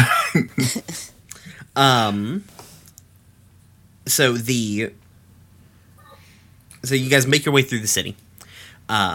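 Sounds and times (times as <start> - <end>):
person coughing: 0.0 - 1.1
speech: 0.4 - 0.9, 1.8 - 2.5, 4.1 - 5.0, 6.8 - 8.2, 8.9 - 9.1.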